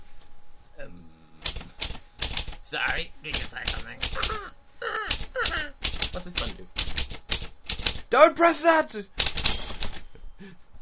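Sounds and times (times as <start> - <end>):
typewriter jamming with heavy mechanical clacks: 1.4 - 4.4, 5.1 - 8.1, 9.2 - 10.0
speech: 2.7 - 7.0, 8.1 - 9.3.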